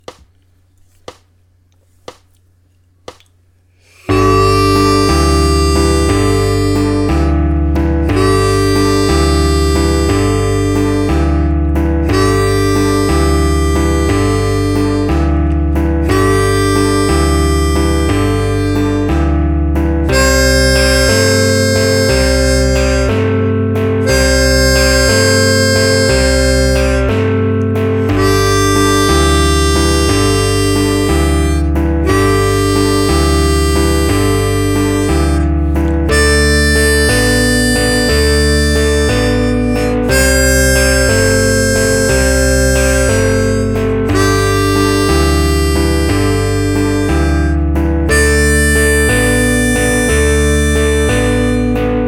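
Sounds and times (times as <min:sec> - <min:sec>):
blues music on the root note: 0:02.0 - 0:52.0.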